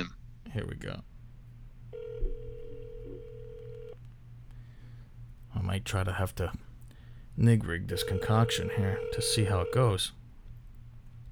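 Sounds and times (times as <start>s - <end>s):
low hum: 0.0s - 11.3s
speech: 0.6s - 1.1s, 5.7s - 6.7s, 7.4s - 10.2s
ringback tone of an outgoing phone call: 2.0s - 4.0s, 8.0s - 9.9s.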